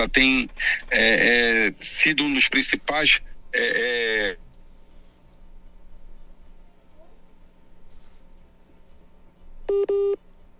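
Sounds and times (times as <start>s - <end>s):
speech: 0.0s - 4.4s
hissy phone-line background: 9.7s - 10.2s
telephone keypad tones: 9.7s - 10.2s.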